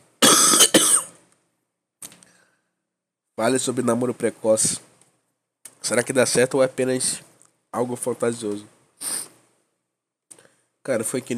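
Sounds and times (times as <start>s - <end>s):
coughing: 0.2s - 1.2s
speech: 3.4s - 4.9s, 5.9s - 9.1s, 10.9s - 11.3s.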